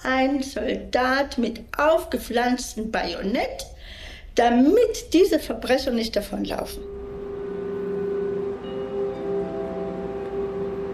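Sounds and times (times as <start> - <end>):
speech: 0.0 - 7.0
train humming beside a platform at the Leipzig railway station: 6.8 - 10.9.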